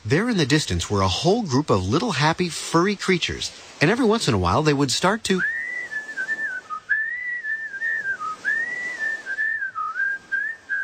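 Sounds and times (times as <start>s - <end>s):
speech: 0.0s - 5.6s
short breaths between whistled phrases: 3.5s - 3.8s
person whistling a wandering tune: 5.4s - 10.8s.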